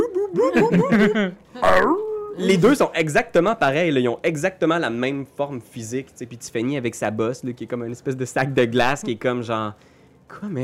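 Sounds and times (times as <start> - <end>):
laughter: 0.0 - 1.4
speech: 0.4 - 10.6
person's voice imitating a dog barking: 1.6 - 2.6.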